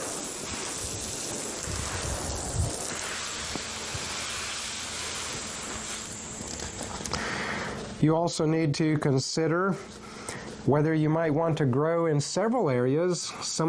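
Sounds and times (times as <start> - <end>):
fine water spray falling on soil watering garden seeds: 0.0 - 7.1
speech: 8.0 - 10.0, 10.6 - 13.6.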